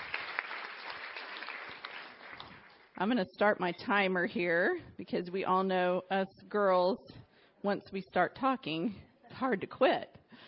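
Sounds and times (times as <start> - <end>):
audience applauding at a speaking event: 0.0 - 2.9
speech: 3.0 - 10.2.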